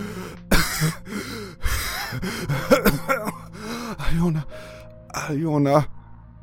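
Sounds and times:
person gasping for air with wheezing breaths: 0:00.0 - 0:04.8
person coughing: 0:00.5 - 0:01.0, 0:01.7 - 0:03.4
speech: 0:05.3 - 0:06.0.

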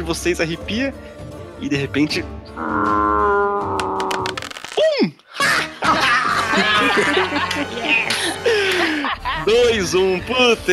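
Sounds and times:
speech: 0:00.0 - 0:03.0, 0:09.5 - 0:10.7
person screaming gutturally imitating an orc's roar: 0:02.6 - 0:04.4
laughter: 0:05.4 - 0:09.7.

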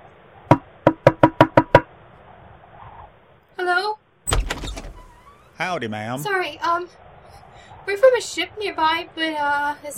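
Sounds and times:
knocks on wooden door: 0:00.5 - 0:01.9
clattering thud: 0:04.3 - 0:05.4
squeaky door hinge creak during a snowstorm: 0:04.3 - 0:05.6
speech: 0:05.6 - 0:07.0, 0:07.9 - 0:09.9.

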